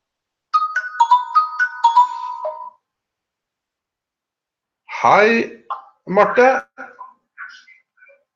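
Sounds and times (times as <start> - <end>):
phone melodic electronic ringtone: 0.6 - 2.8
speech: 5.0 - 6.9.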